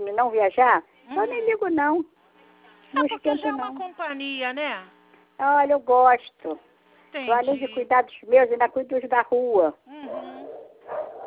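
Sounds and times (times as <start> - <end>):
speech: 0.2 - 2.2, 2.9 - 10.3
dogs barking heard over a phone line: 10.4 - 11.2.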